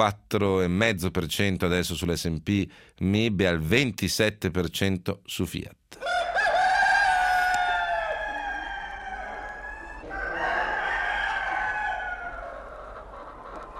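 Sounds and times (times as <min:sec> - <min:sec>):
speech: 0:00.0 - 0:06.1
rooster crowing played as a sound effect: 0:06.0 - 0:13.1.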